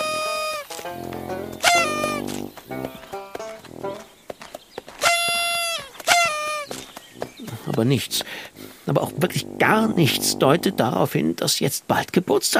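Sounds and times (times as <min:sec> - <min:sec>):
toy party horn blaring: 0:00.0 - 0:00.8, 0:01.5 - 0:02.4, 0:05.0 - 0:06.8
rustling: 0:00.0 - 0:10.7
speech: 0:07.8 - 0:12.5.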